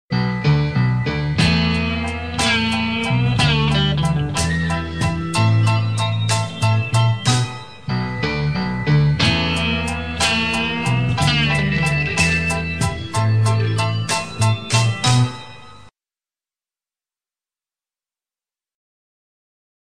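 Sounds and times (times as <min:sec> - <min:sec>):
exotic guitar: 0:00.2 - 0:15.7.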